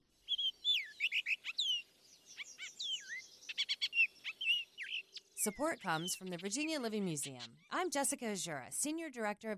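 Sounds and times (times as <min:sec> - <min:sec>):
Baltimore oriole singing a whistled song: 0:00.2 - 0:07.7
speech: 0:05.4 - 0:09.5.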